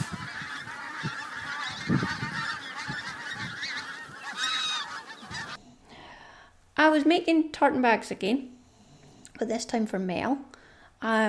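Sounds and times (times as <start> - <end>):
flock of geese honking: 0.0 - 5.6
speech: 6.8 - 8.6, 9.4 - 11.2.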